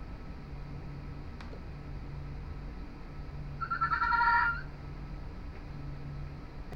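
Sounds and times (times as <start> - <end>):
low background hum: 0.0 - 6.7
fennec fox quavering whining call: 3.6 - 4.7.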